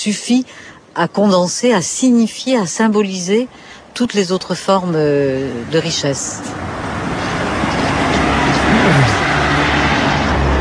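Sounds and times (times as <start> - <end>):
speech: 0.0 - 6.8
street traffic rumbling: 0.0 - 10.5
car driving past with engine pitch dropping: 6.5 - 10.5.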